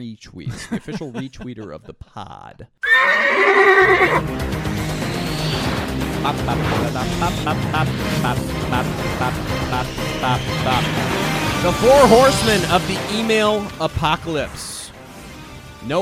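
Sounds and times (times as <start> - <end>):
speech: 0.0 - 14.8
laughter: 0.4 - 2.3, 6.1 - 11.1
horse whinnying: 2.8 - 4.2.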